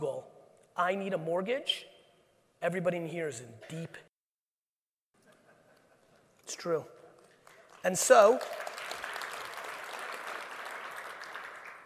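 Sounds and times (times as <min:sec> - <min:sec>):
speech: 0:00.8 - 0:01.9, 0:02.6 - 0:04.1, 0:06.5 - 0:07.0, 0:07.8 - 0:08.6
audience applause: 0:07.4 - 0:11.8.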